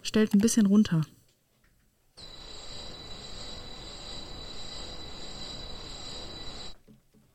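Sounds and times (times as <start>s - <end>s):
speech: 0.1s - 1.2s
piercing sustained metallic screech of heavy industry: 2.2s - 6.8s.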